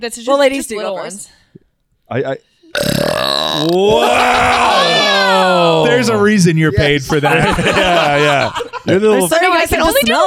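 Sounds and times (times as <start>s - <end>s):
speech: 0.0s - 1.5s, 2.1s - 10.2s
loud rumbling burp: 2.7s - 5.0s
short grunt-like voiced sound: 2.7s - 5.1s
laughter: 7.1s - 9.0s.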